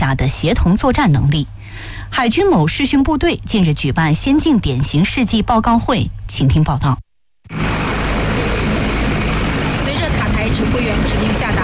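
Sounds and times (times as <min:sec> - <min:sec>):
speech: 0:00.1 - 0:07.0
helicopter engine roaring whine: 0:07.5 - 0:11.6.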